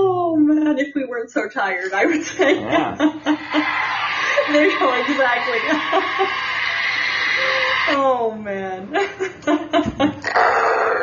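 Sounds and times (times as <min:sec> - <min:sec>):
speech: 0:00.8 - 0:06.6, 0:07.9 - 0:10.6
laughter: 0:02.0 - 0:08.1, 0:08.9 - 0:10.3
person imitating a dog's growl: 0:10.2 - 0:11.0.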